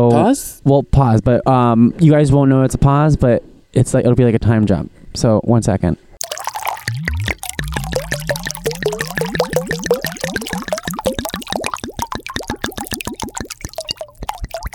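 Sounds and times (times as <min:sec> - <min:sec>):
speech: 0:00.0 - 0:06.0
wine glugging from a bottle into a glass: 0:06.2 - 0:14.7.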